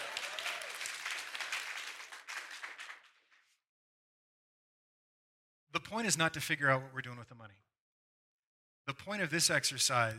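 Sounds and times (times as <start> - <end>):
audience applause: 0.0 - 3.3
speech: 5.9 - 7.7, 8.9 - 10.1.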